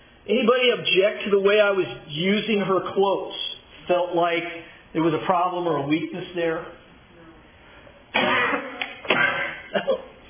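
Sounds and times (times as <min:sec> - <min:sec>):
speech: 0:00.2 - 0:06.8
harsh coughs and throat sounds: 0:08.1 - 0:10.1.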